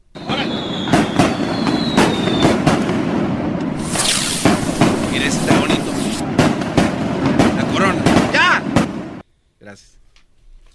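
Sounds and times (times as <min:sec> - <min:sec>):
fireworks rockets bangs and crackles: 0:00.1 - 0:09.2
thin whistling tone of fireworks rockets: 0:00.2 - 0:02.6.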